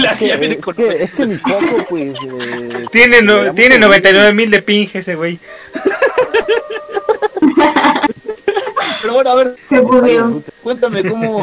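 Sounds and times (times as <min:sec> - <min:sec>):
speech: 0:00.0 - 0:05.9, 0:09.1 - 0:11.4
laughter-like vocalizing: 0:01.4 - 0:03.0, 0:05.5 - 0:09.1, 0:10.9 - 0:11.4
human voice imitating a rooster crowing: 0:05.8 - 0:08.0.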